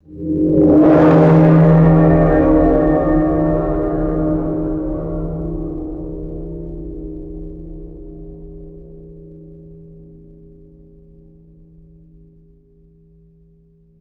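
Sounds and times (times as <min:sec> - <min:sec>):
deep resonant metallic gong strike: 0:00.2 - 0:09.0.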